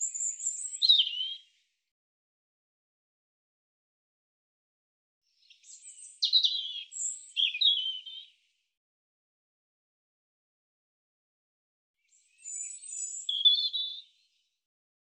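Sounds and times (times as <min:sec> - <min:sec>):
European robin singing: 0:00.0 - 0:01.5, 0:05.4 - 0:08.3, 0:12.0 - 0:14.3.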